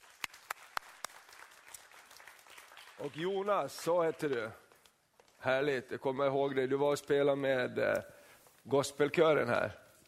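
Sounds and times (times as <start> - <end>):
audience applause for a performer: 0.0 - 4.7
speech: 3.0 - 4.6, 5.4 - 9.8.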